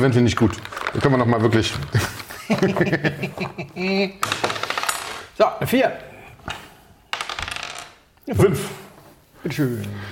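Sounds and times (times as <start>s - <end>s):
speech: 0.0s - 4.5s, 5.4s - 6.6s, 8.3s - 8.8s, 9.4s - 10.0s
laughter: 1.9s - 4.2s
small die clattering and bouncing on a hard tabletop: 4.2s - 5.3s, 7.1s - 8.0s.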